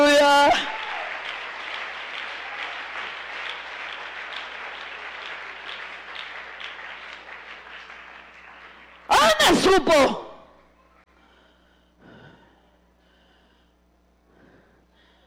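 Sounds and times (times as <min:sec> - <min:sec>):
congregation applauding: 0:00.0 - 0:10.3
speech: 0:09.6 - 0:10.2.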